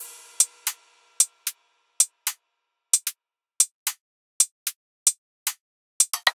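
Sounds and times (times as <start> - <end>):
drum loop at 150 BPM: 0.0 - 2.4, 3.0 - 5.2, 6.0 - 6.3.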